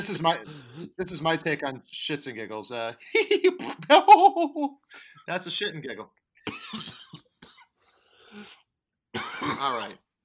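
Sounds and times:
speech: 0.0 - 7.1, 8.4 - 8.6, 9.2 - 10.0
dry unproductive hacking cough: 0.4 - 1.0, 6.5 - 7.7, 9.2 - 10.0.

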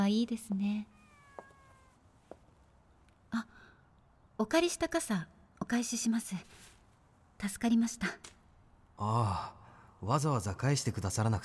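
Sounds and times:
speech: 0.0 - 1.0, 3.3 - 3.5, 4.4 - 6.7, 7.4 - 8.4, 9.0 - 11.4
pet cat meowing: 0.8 - 2.3.

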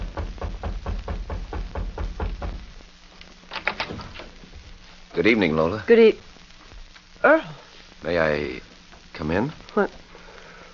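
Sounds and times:
man knocking on the wooden door of a little house in Pierre, Dakota Territory: 0.0 - 2.7
quiet rustle: 2.7 - 10.7
speech: 5.2 - 6.3, 7.2 - 10.0.

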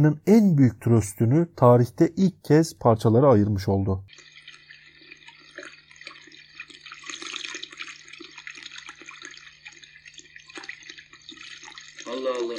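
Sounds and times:
speech: 0.0 - 4.3
water gushing from a leak: 4.1 - 12.5.

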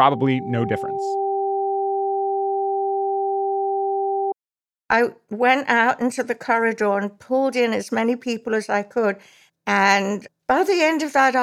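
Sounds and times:
speech: 0.0 - 1.2, 4.9 - 11.4
two alternating high and low electronic sine tones: 0.0 - 4.4.

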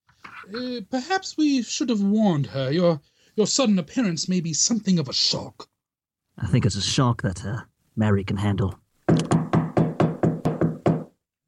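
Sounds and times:
speech: 0.5 - 5.7, 6.4 - 8.8
firm knocking on a wooden door: 9.1 - 11.2.

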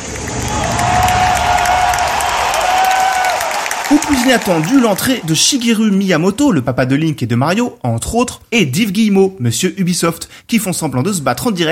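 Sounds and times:
high whooping shriek: 0.0 - 4.9
large audience cheering and applauding in a hall at a video game conference: 0.0 - 5.8
speech: 3.9 - 11.7.

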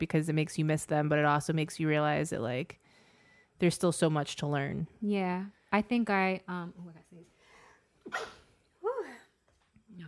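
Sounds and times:
speech: 0.0 - 2.8, 3.6 - 7.3, 8.0 - 8.4
person sneezing: 8.0 - 8.6.

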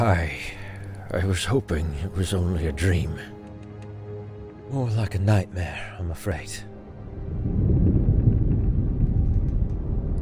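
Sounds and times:
speech: 0.0 - 3.4, 4.7 - 6.7
distant thunder rumble of a storm: 7.1 - 10.2.

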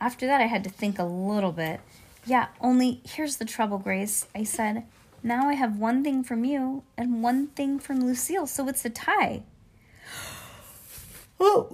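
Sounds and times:
speech: 0.0 - 9.5, 11.4 - 11.7
person yawning: 10.0 - 10.8, 11.4 - 11.7.

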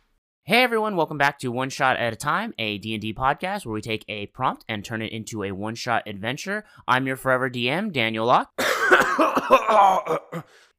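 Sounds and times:
speech: 0.5 - 10.7
person coughing in a rough voiced fit: 8.6 - 10.7.

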